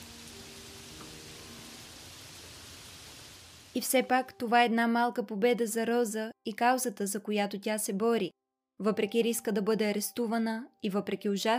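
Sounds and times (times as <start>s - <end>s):
rain falling in a steady hiss: 0.0s - 4.1s
speech: 3.8s - 11.5s.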